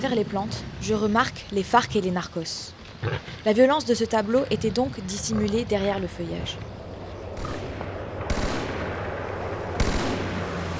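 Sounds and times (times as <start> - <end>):
speech: 0.0 - 6.8
steady rumble of shooting: 7.1 - 10.7
sharp loud gunshot cracks: 7.3 - 10.6.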